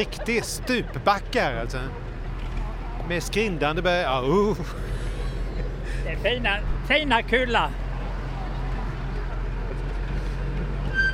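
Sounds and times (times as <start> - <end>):
laughter: 0.0 - 1.8, 4.3 - 6.2
speech: 0.0 - 2.1, 3.1 - 5.0, 6.0 - 7.8
low rumble of a wagon rolling downhill: 0.0 - 11.1
wagon brakes screeching going downhill: 9.9 - 11.1.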